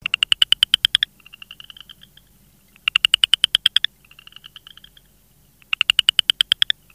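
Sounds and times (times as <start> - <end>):
southern chorus frog rasping trills: 0.0 - 6.9.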